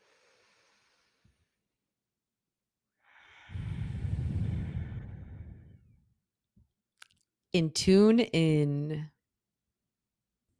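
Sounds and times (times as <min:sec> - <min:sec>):
deep breath drawn in through the nose and mouth: 0:00.0 - 0:01.7, 0:02.9 - 0:06.2
speech: 0:07.6 - 0:09.1.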